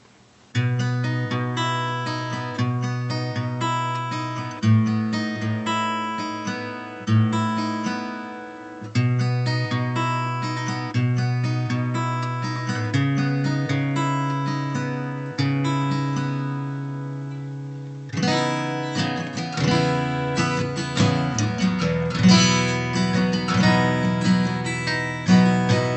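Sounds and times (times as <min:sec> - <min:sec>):
light strum on an L 00: 0:00.6 - 0:25.9.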